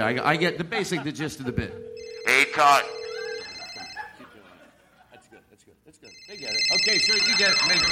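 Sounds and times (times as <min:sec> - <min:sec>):
speech: 0:00.0 - 0:03.0, 0:06.3 - 0:07.9
laughter: 0:00.6 - 0:01.8, 0:03.1 - 0:06.2, 0:06.8 - 0:07.9
telephone ringing with an electronic tone: 0:01.5 - 0:04.3, 0:06.1 - 0:07.9.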